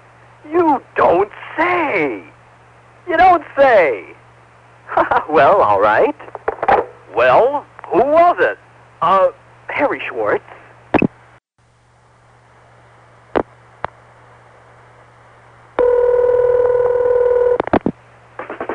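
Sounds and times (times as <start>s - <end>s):
speech: 0.4s - 2.3s, 3.1s - 4.2s, 5.0s - 6.3s, 7.1s - 10.4s
rapid loud telephone tone bursts: 15.8s - 17.6s
low hum on a telephone line: 15.8s - 17.9s.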